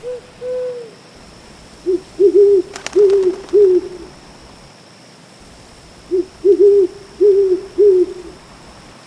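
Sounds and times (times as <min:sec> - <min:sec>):
owl hooting at night: 0:00.0 - 0:01.0, 0:01.8 - 0:04.2, 0:06.0 - 0:08.4
faint steady hiss: 0:00.0 - 0:09.0.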